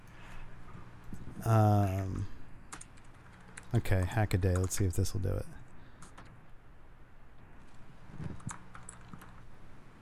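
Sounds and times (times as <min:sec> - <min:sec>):
low steady hum: 0:00.0 - 0:09.9
speech: 0:01.4 - 0:02.3, 0:03.7 - 0:05.6
person typing on a computer keyboard: 0:02.7 - 0:04.9, 0:06.0 - 0:06.3, 0:08.3 - 0:09.4.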